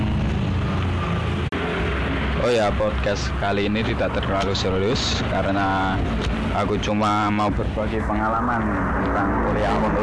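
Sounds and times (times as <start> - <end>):
motorcycles passing by: 0.0 - 10.0
speech: 2.4 - 10.0.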